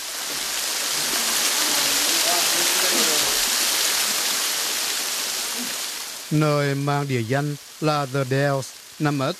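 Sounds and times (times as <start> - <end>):
waterfall pouring down a rock slope into a creek on Christmas Island: 0.0 - 9.3
speech: 6.3 - 9.3.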